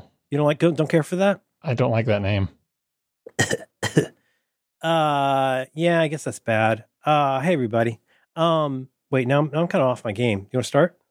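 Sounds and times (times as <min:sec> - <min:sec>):
speech: 0:00.3 - 0:02.6, 0:03.3 - 0:04.2, 0:04.8 - 0:11.0
harsh raspy coughs into the microphone: 0:03.3 - 0:04.2.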